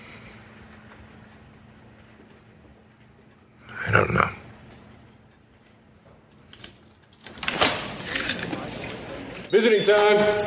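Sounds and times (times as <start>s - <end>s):
speech: 3.9s - 4.4s, 9.6s - 10.4s
keys jangling and rattling: 6.5s - 9.1s
locked ward door being unlocked and pulled open by an orderly: 6.5s - 10.4s.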